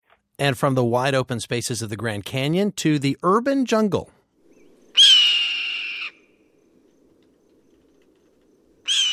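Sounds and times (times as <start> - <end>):
speech: 0.4 - 4.1
red-tailed hawk screaming: 4.9 - 6.3, 8.8 - 9.1.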